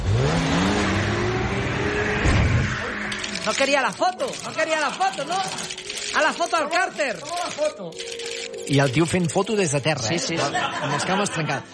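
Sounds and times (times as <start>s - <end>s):
car engine revving: 0.0s - 3.6s
speech: 3.5s - 11.7s
laughter: 10.0s - 11.7s.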